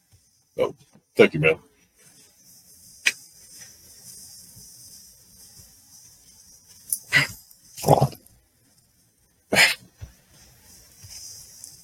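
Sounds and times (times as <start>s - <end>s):
speech: 0.6s - 1.7s
black dog snorting: 7.1s - 8.2s.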